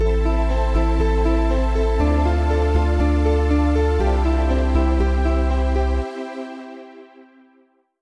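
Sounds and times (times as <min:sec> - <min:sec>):
bass piano chord example: 0:00.0 - 0:06.2.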